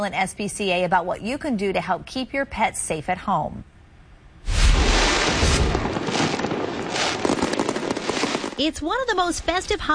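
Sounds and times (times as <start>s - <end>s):
speech: 0.0s - 3.7s, 8.6s - 9.9s
fireworks exploding: 4.4s - 9.9s.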